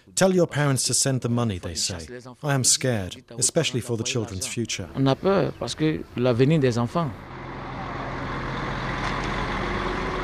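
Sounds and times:
speech: 0:00.1 - 0:07.4
heavy cargo trucks idling and moving along a lane outside plant: 0:05.1 - 0:10.2.

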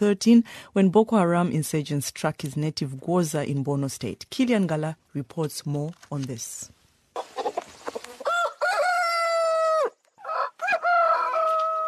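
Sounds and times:
speech: 0:00.0 - 0:07.3
rooster clucking: 0:07.2 - 0:11.8
rooster crowing at dawn: 0:08.2 - 0:11.8.

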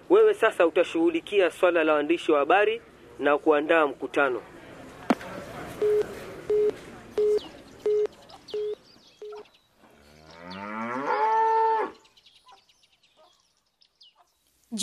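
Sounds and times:
speech: 0:00.2 - 0:04.5
short electronic beeps: 0:05.8 - 0:09.5
cow mooing in a cowshed: 0:10.0 - 0:12.0.

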